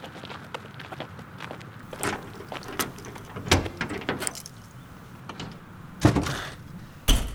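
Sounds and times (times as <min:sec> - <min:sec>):
car trunk mechanical clicks: 0:01.8 - 0:07.3.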